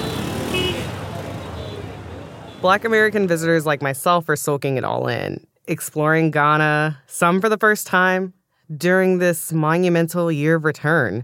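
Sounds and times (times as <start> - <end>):
dense car traffic in a massive city in Ghana: 0.0 - 5.4
speech: 2.6 - 11.2.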